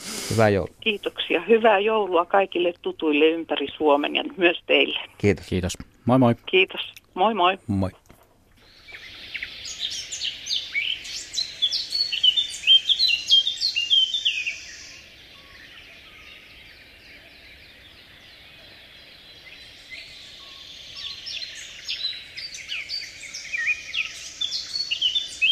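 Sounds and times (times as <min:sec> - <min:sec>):
speech: 0:00.3 - 0:08.0
Eurasian blackcap song played on the radio: 0:08.6 - 0:15.6, 0:19.9 - 0:25.5.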